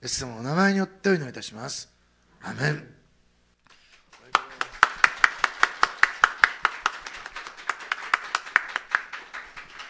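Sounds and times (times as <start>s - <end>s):
speech: 0.0s - 3.0s
church audience clapping hands after a baptism: 3.9s - 9.8s.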